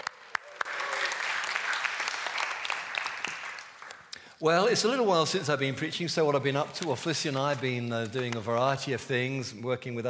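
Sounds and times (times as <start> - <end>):
crowd cheering: 0.0 - 3.9
audience applause: 0.0 - 4.1
speech: 4.4 - 10.0.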